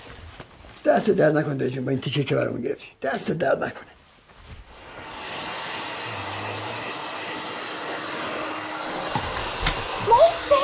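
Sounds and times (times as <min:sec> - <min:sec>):
speech: 0:00.9 - 0:04.0
hair dryer blowing: 0:04.6 - 0:10.6.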